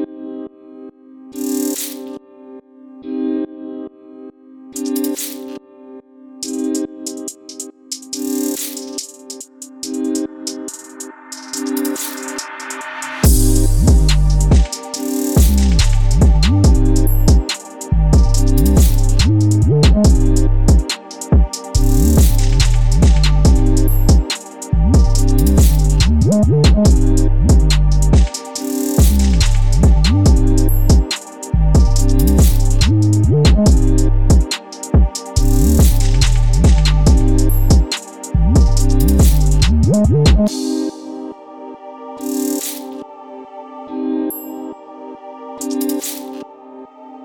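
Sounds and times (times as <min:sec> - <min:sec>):
808 drill beat loop: 0:01.4 - 0:02.1, 0:04.8 - 0:05.4, 0:06.4 - 0:40.9, 0:42.2 - 0:42.9, 0:45.6 - 0:46.4.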